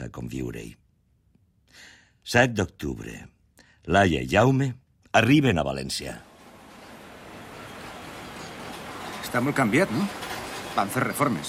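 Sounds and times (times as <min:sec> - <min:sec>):
speech: 0:00.0 - 0:00.8, 0:01.7 - 0:03.3, 0:03.9 - 0:06.3, 0:09.3 - 0:10.2, 0:10.8 - 0:11.4
train arriving at a station: 0:06.1 - 0:11.4.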